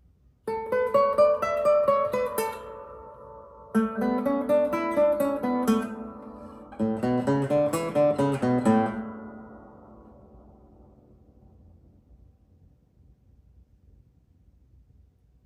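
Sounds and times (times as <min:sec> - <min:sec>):
fingerpicked guitar: 0:00.4 - 0:11.7.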